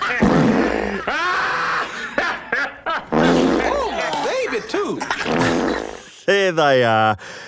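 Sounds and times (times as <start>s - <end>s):
fart sound effects from a library: 0.0s - 1.0s, 3.1s - 4.0s, 5.1s - 6.0s
laughter: 0.0s - 6.1s
speech: 6.3s - 7.4s.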